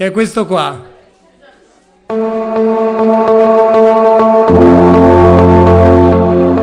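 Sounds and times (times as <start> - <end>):
speech: 0.0 - 0.9
instrumental closing theme deep bass line: 2.1 - 6.6
instrumental closing theme steady pulsing beat: 2.1 - 6.6
instrumental closing theme sustained chords: 2.1 - 6.6.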